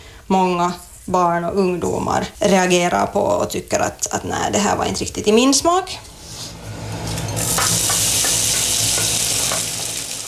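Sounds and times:
speech: 0.3s - 6.1s
Baltic herring and other ingredients sizzling in a frying pan: 6.8s - 10.2s.

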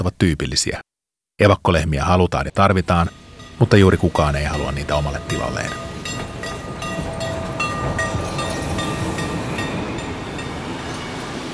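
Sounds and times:
speech: 0.0s - 6.3s
high squealing train wheels: 2.8s - 11.5s
train rolling along the rails: 2.8s - 11.5s
rhythmic metallic clicks of train on rails: 2.9s - 10.7s.

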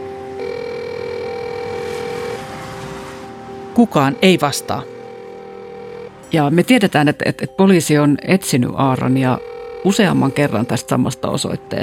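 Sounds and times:
door intercom buzzer at an apartment building entrance: 0.4s - 2.7s, 3.9s - 6.2s, 9.3s - 10.9s
speech: 3.8s - 5.0s, 6.3s - 11.8s.

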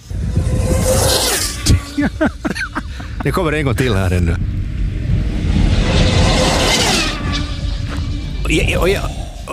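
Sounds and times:
British-built high-speed radio-controlled record car whooshing past: 0.0s - 2.2s, 4.7s - 8.5s
laughter: 1.9s - 3.5s
speech: 2.0s - 4.6s, 8.5s - 9.5s.

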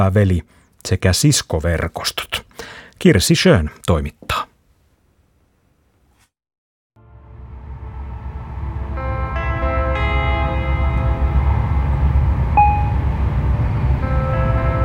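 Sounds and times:
speech: 0.0s - 4.5s
faint tonal whines: 7.0s - 14.8s
intercity passenger train rumbling on rails: 7.4s - 14.8s.

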